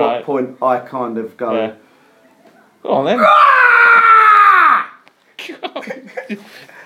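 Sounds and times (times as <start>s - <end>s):
speech: 0.0s - 1.9s, 2.8s - 3.8s, 5.5s - 6.7s
man's loud aggressive scream like a war cry: 3.2s - 5.0s
laughter: 5.4s - 6.8s.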